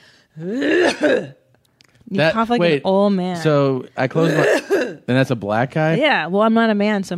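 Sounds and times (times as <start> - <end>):
speech: 0.4 - 1.4, 2.1 - 7.1
voice imitating a rasping throaty cough: 0.4 - 1.4, 4.2 - 5.1.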